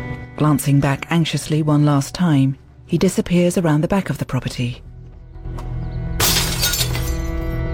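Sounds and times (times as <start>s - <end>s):
speech: 0.4s - 4.9s
glass window pane in a house's back door shattering: 6.2s - 7.5s.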